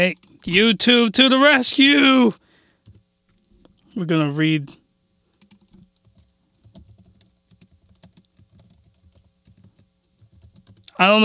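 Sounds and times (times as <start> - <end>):
speech: 0.0 - 2.4, 4.0 - 4.8, 11.0 - 11.2
typing on a computer keyboard: 2.8 - 3.0, 5.4 - 11.0.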